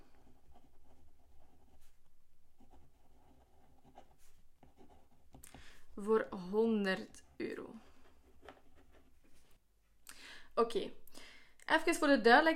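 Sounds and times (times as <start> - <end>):
pen scratching across paper while writing: 0.0 - 5.5, 7.1 - 9.5
speech: 6.0 - 7.6, 10.6 - 11.0, 11.7 - 12.5.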